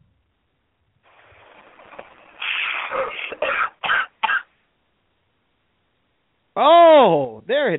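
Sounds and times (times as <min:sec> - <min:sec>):
person clearing throat: 0:02.8 - 0:04.5
person coughing: 0:02.9 - 0:04.5
speech: 0:06.6 - 0:07.7.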